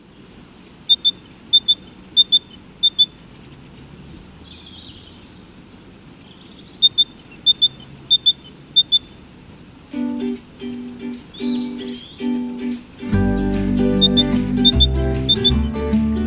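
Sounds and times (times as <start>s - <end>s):
faint background hiss: 0.0s - 16.2s
great tit song: 0.6s - 3.5s, 6.3s - 16.2s.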